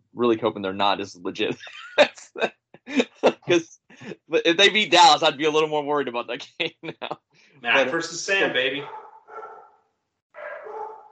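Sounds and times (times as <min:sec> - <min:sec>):
speech: 0:00.2 - 0:09.1
laughter: 0:00.9 - 0:08.8
dog barking: 0:08.8 - 0:09.8, 0:10.4 - 0:11.1.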